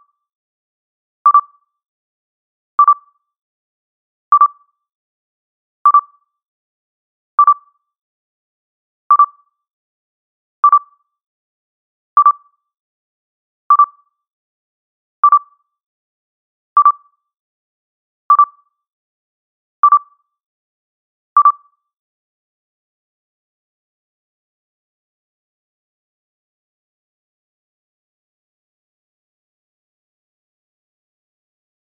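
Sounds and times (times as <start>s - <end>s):
scanner blip: 1.3s - 1.6s, 2.8s - 3.1s, 5.9s - 6.2s, 7.4s - 7.7s, 9.1s - 9.5s, 12.2s - 12.5s, 13.7s - 14.1s, 15.3s - 15.6s, 18.3s - 18.7s, 19.9s - 20.2s, 21.4s - 21.7s.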